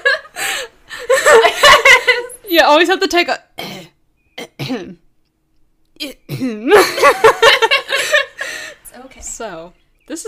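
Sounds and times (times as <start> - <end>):
laughter: 0.0 - 2.5, 6.7 - 8.8
speech: 2.5 - 3.5, 4.7 - 5.0, 6.0 - 7.8, 9.0 - 10.2
person clearing throat: 3.6 - 5.0, 6.2 - 6.8.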